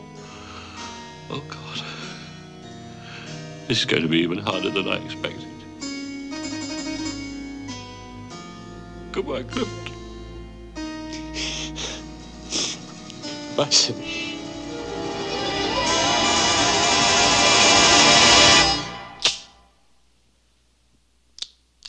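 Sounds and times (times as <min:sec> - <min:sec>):
speech: 0:01.3 - 0:02.0, 0:03.7 - 0:05.5, 0:09.2 - 0:09.8, 0:13.6 - 0:14.3
loud rushing whooshing noise: 0:14.4 - 0:19.6.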